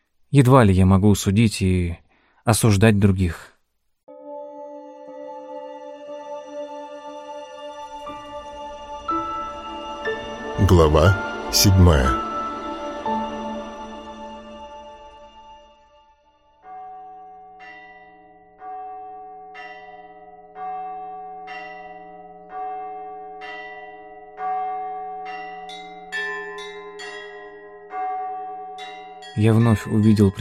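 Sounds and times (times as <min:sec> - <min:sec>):
speech: 0:00.3 - 0:03.5, 0:10.7 - 0:12.2, 0:29.4 - 0:30.3
church bells ringing for mass: 0:05.1 - 0:15.5, 0:16.6 - 0:30.3.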